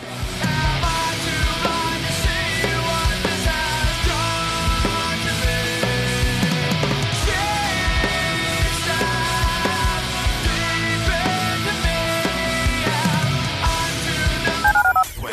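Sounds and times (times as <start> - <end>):
busy musical backing: 0.0 - 15.2
telephone keypad dialing tones: 14.6 - 15.2.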